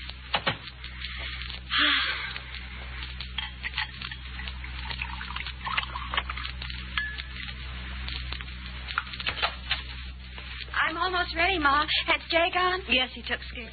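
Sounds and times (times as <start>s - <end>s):
light clicks and crackles: 0.0s - 10.8s
steady low hum: 0.0s - 13.7s
orange juice pouring into a glass: 3.6s - 7.6s
speech: 11.3s - 13.7s.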